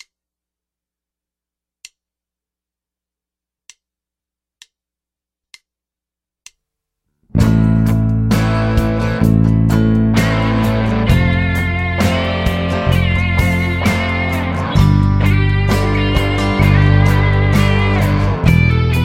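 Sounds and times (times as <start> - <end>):
bass guitar playing a song at slow tempo: 7.3 - 19.0.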